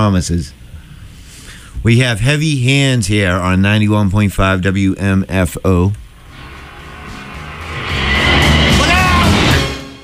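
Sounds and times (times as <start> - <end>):
speech: 0.0 - 0.6, 1.8 - 6.0
car engine and tire roar passing close by: 6.2 - 9.9.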